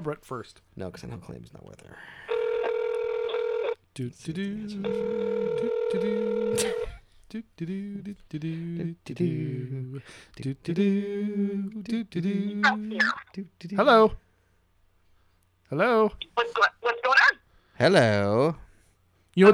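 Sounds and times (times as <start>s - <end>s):
speech: 0.0s - 2.4s, 4.0s - 14.2s, 15.7s - 16.8s, 17.8s - 18.6s, 19.4s - 19.5s
ringback tones of an outgoing phone call: 2.3s - 3.8s, 4.8s - 6.9s
voice talking over the phone line: 2.3s - 3.8s, 4.6s - 6.9s, 12.5s - 14.1s, 15.8s - 17.4s.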